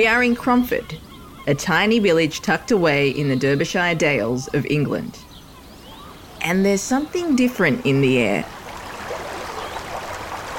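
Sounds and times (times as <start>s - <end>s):
speech: 0.0s - 5.2s, 6.4s - 8.6s
old brook babbling in a small village in the Derbyshire Dales, England: 0.0s - 10.5s.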